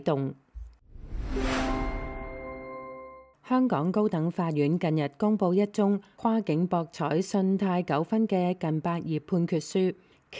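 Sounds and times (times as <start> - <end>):
speech: 0.0 - 0.4, 3.5 - 10.3
stock exchange opening bell ringing: 1.4 - 3.3.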